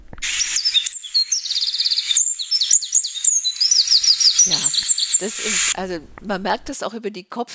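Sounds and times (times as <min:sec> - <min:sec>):
tiny wren singing rapid high-pitched trills: 0:00.2 - 0:05.8
speech: 0:05.2 - 0:07.5.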